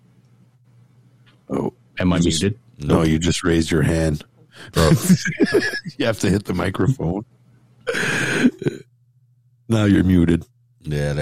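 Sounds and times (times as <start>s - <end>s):
speech: 1.5s - 7.4s, 9.7s - 11.2s
laughter: 4.8s - 7.2s
single harsh cough: 7.9s - 8.9s.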